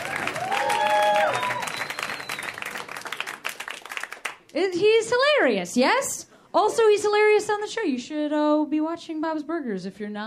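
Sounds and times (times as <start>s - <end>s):
audience applause and cheering for a comedian at a live comedy show: 0.0s - 4.5s
speech: 4.6s - 10.2s.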